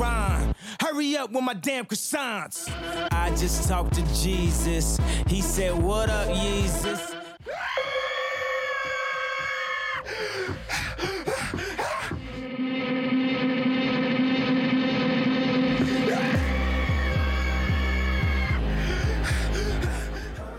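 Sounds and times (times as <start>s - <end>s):
heavy bass-driven beat: 0.0s - 0.6s, 2.7s - 7.1s, 10.5s - 12.5s, 15.7s - 20.5s
speech: 1.0s - 7.2s
distorted screaming in a rap song drenched in effects and echo: 2.6s - 10.1s, 12.2s - 20.1s.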